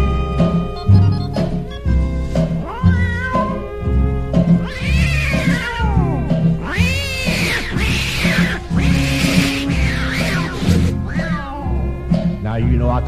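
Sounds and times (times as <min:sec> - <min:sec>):
rhythmic musical backing: 0:00.0 - 0:13.0
tomcats fighting and caterwauling at night: 0:02.6 - 0:12.2.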